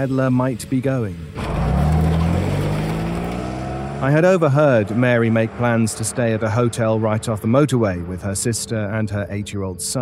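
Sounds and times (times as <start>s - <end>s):
speech: 0.0s - 1.4s, 4.0s - 10.0s
car engine accelerating hard: 0.0s - 10.0s.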